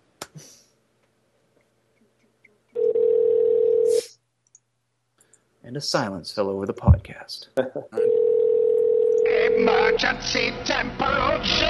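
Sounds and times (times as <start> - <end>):
telephone dial tone: 2.8 - 3.9, 8.0 - 9.5
speech: 5.7 - 8.4, 9.3 - 11.6.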